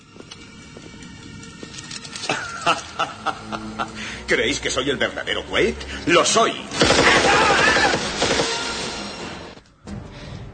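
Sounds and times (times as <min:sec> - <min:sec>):
laughter: 0:02.2 - 0:04.2
speech: 0:02.3 - 0:06.5
gunfire in a futuristic science-fiction video game scene: 0:06.7 - 0:09.0.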